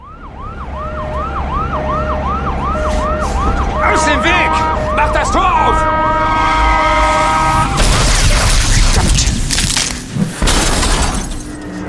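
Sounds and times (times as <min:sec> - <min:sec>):
ambulance siren wailing: 0:00.0 - 0:07.8
traffic rumble: 0:00.0 - 0:11.8.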